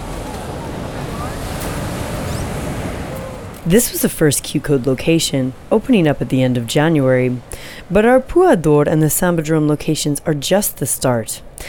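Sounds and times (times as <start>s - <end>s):
ocean waves crashing against rocks at Arpoador in Rio de Janeiro: 0.0s - 8.4s
wind buffeting the microphone: 0.0s - 8.5s
speech: 3.6s - 11.6s.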